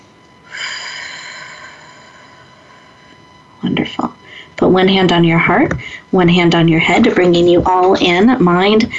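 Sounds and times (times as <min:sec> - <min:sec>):
breath in through nose, out through mouth: 0:00.4 - 0:03.3, 0:04.2 - 0:04.6, 0:05.8 - 0:06.1
speech: 0:03.6 - 0:08.9.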